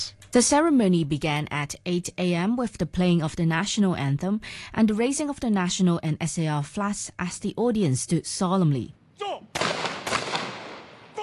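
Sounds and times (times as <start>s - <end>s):
speech: 0.0s - 9.6s
rifle salute volleys fired by a police guard unit at a memorial ceremony: 9.6s - 11.1s.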